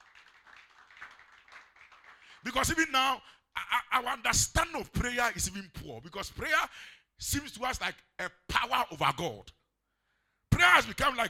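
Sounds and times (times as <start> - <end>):
audience clapping: 0.0 - 2.6
speech: 2.4 - 9.6, 10.6 - 11.2.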